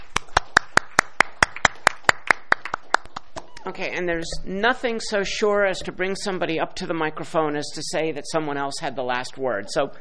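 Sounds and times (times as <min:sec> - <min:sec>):
audience applause for the chair of a review group: 0:00.0 - 0:03.7
speech: 0:03.6 - 0:10.0.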